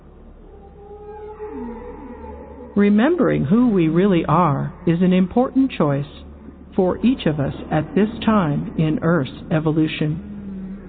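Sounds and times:
whale song with long low moaning call: 0:00.3 - 0:02.9, 0:10.2 - 0:10.8
steady low rumble: 0:02.6 - 0:10.8
speech: 0:02.8 - 0:06.2, 0:06.8 - 0:10.3.

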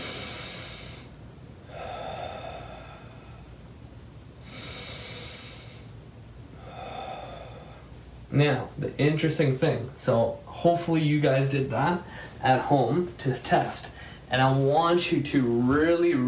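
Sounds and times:
faint deep breaths while lying on one side: 0:00.0 - 0:08.3, 0:12.0 - 0:12.4, 0:13.9 - 0:14.3
speech: 0:08.4 - 0:16.2.

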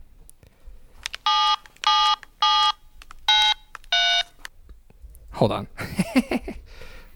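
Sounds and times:
telephone dialing tones of an outgoing phone call: 0:01.2 - 0:04.4
speech: 0:05.4 - 0:06.6
laughter: 0:05.8 - 0:06.6.

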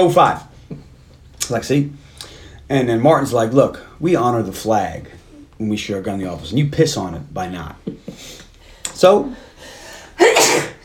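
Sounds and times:
speech: 0:00.0 - 0:00.5, 0:01.5 - 0:02.0, 0:02.7 - 0:08.4, 0:09.0 - 0:09.5
sneeze: 0:10.2 - 0:10.8.

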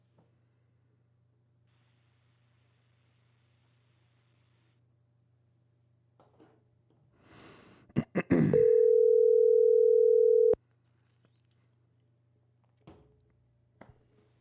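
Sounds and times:
telephone dial tone while placing a call: 0:08.6 - 0:10.6.

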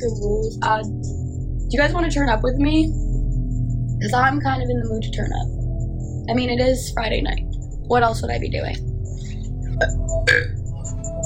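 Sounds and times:
speech: 0:00.0 - 0:03.0, 0:04.0 - 0:05.6, 0:06.3 - 0:08.9, 0:09.8 - 0:10.5
low steady rumble: 0:00.0 - 0:11.2
person burping: 0:09.8 - 0:10.6.

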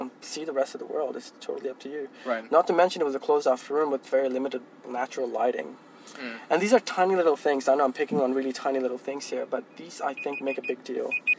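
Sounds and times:
speech: 0:00.2 - 0:11.3
phone alarm beeping: 0:10.2 - 0:11.3.

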